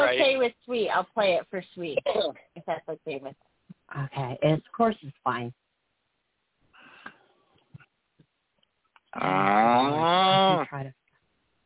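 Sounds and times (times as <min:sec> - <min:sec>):
speech: 0:00.4 - 0:05.6, 0:09.2 - 0:11.0
person giving a long wavering moo in imitation of a cow: 0:09.1 - 0:10.8.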